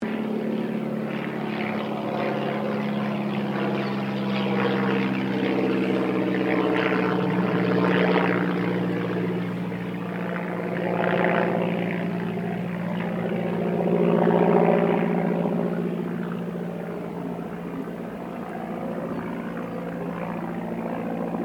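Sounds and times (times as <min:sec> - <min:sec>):
1936 de Havilland DH82A Tiger Moth passing slowly: 0:00.0 - 0:21.4.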